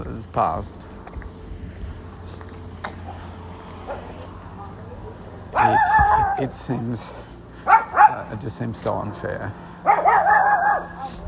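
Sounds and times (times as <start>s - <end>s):
quiet outdoor background: 0.0s - 11.2s
speech: 0.2s - 0.9s, 5.6s - 7.3s, 8.1s - 10.0s
dog barking: 3.9s - 6.4s, 7.7s - 8.3s, 9.8s - 11.2s.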